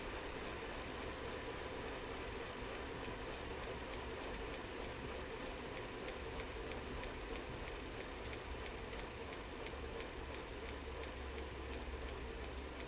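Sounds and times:
rickety bicycle spinning: 0.1 - 12.8.

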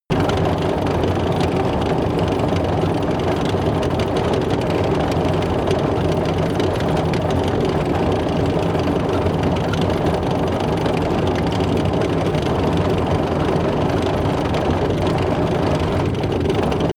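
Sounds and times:
small tank tracks rattling fast: 0.1 - 16.9.

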